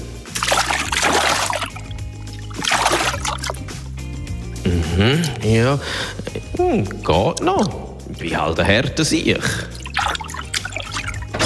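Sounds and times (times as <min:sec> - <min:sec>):
person stepping into water in a bathtub: 0:00.3 - 0:03.9, 0:09.4 - 0:11.4
speech: 0:05.0 - 0:09.8.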